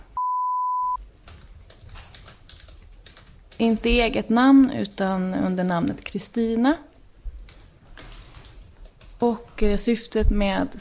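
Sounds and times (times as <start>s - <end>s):
push-button phone electronic beep: 0.2s - 1.0s
speech: 3.6s - 6.9s, 9.2s - 10.8s.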